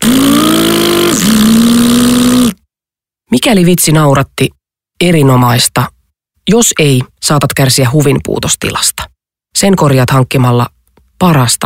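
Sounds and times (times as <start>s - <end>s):
car engine revving: 0.0s - 2.5s
speech: 3.4s - 5.9s, 6.5s - 11.6s.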